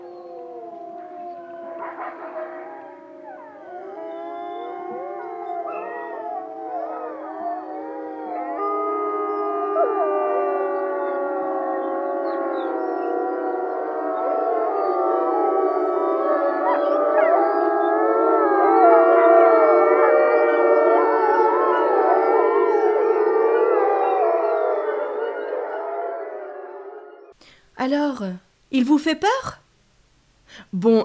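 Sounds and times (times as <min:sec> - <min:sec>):
chorus of wolves howling: 0:00.0 - 0:27.4
speech: 0:27.9 - 0:29.6, 0:30.7 - 0:31.0.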